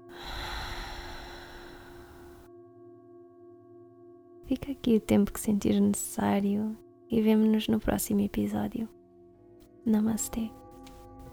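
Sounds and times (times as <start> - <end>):
deep breath in through nose, out through mouth during yoga relaxation: 0.0 - 2.5
speech: 4.5 - 9.0, 9.8 - 10.6.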